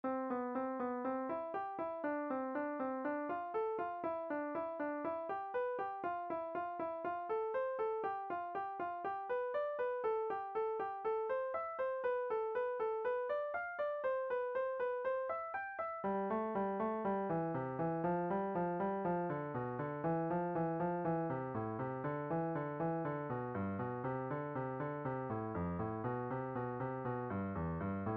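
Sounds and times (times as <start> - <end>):
piano playing two over one crossing: 0.0 - 28.1.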